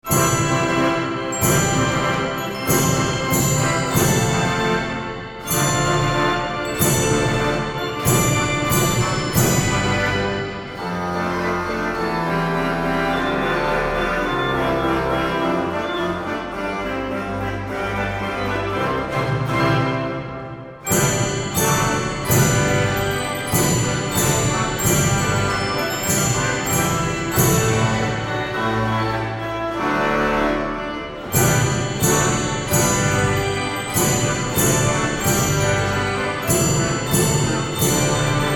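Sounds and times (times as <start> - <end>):
march played on organs in the Bolognese Apennines: 0.0 - 38.5.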